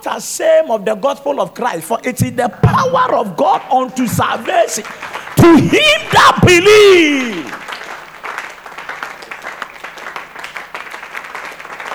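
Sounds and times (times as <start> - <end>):
speech: 0.0 - 7.7
large audience applauding in an auditorium: 3.6 - 11.9.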